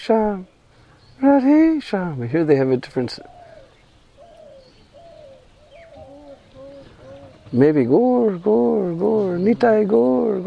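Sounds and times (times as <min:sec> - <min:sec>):
speech: 0:00.0 - 0:00.5, 0:01.2 - 0:03.4, 0:07.5 - 0:10.4
light hiss: 0:00.0 - 0:10.4
doves cooing: 0:03.1 - 0:10.4.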